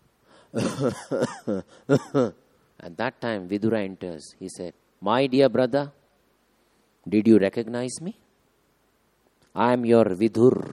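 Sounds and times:
speech: 0:00.5 - 0:06.0, 0:07.0 - 0:08.2, 0:09.6 - 0:10.7
person imitating an old blind man coughing: 0:00.6 - 0:02.4.

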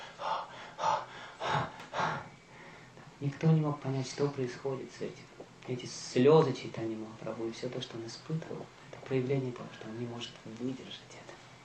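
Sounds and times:
person imitating heavy breathing: 0:00.0 - 0:02.4
speech: 0:03.2 - 0:11.3.

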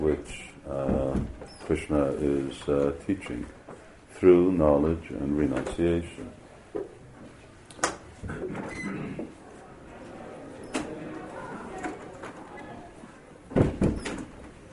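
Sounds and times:
faint room hum: 0:00.0 - 0:14.7
speech: 0:00.1 - 0:07.0
door opening: 0:08.4 - 0:09.3, 0:10.5 - 0:14.6.

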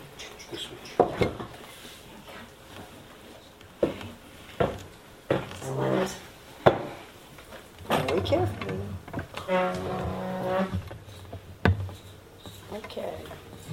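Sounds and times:
speech: 0:00.5 - 0:01.4
wooden chair knocking and scraping into place: 0:03.8 - 0:13.7.

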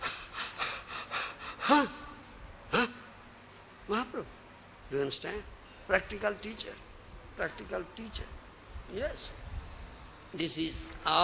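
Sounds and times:
sharp gasping inhalations with a strained voiced edge: 0:00.0 - 0:01.9
heavy breathing: 0:00.0 - 0:02.1
speech: 0:01.7 - 0:02.0, 0:04.9 - 0:09.4, 0:10.3 - 0:11.2.

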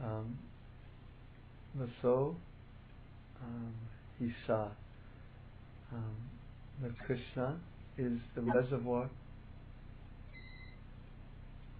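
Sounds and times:
steady low hum: 0:00.0 - 0:11.7
speech: 0:01.7 - 0:02.5, 0:03.4 - 0:04.8, 0:05.9 - 0:09.2
single short electronic beep: 0:10.4 - 0:10.8.

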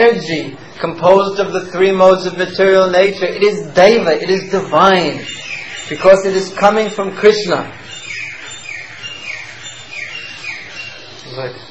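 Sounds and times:
speech: 0:00.0 - 0:08.0, 0:11.4 - 0:11.6
bird chirping: 0:00.0 - 0:11.6
low hum: 0:00.0 - 0:11.6.

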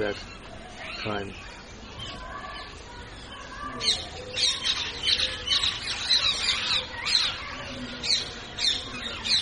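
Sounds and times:
speech: 0:00.0 - 0:02.2, 0:03.8 - 0:04.6
parrots squawking: 0:03.8 - 0:09.4.

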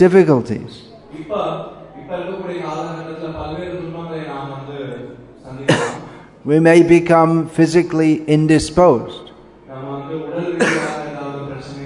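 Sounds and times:
speech: 0:00.0 - 0:09.3
person coughing: 0:05.7 - 0:06.3, 0:10.6 - 0:11.1.

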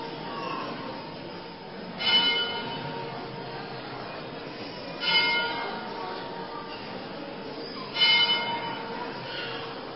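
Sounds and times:
large bell rung by rope tolling: 0:02.0 - 0:03.7, 0:05.0 - 0:06.0, 0:07.9 - 0:09.2.

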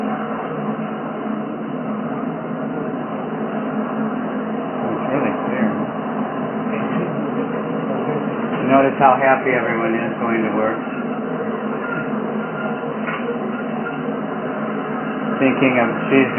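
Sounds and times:
subway train riding in Paris: 0:00.0 - 0:16.3
speech: 0:09.0 - 0:11.0, 0:15.4 - 0:16.3
subway train squeals and clanks: 0:09.5 - 0:16.3.

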